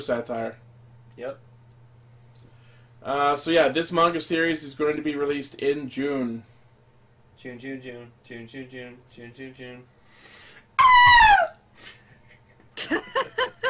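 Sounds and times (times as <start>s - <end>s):
speech: 0.0s - 1.5s, 3.0s - 6.5s, 7.4s - 12.0s, 12.8s - 13.5s
woman screaming in terror: 10.8s - 11.6s
laughter: 12.7s - 13.6s.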